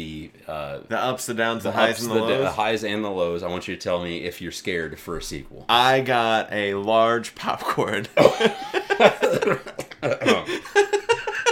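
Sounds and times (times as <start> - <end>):
speech: 0.0 - 10.8
laughter: 8.1 - 11.5
harsh sputtering coughs: 8.2 - 10.5.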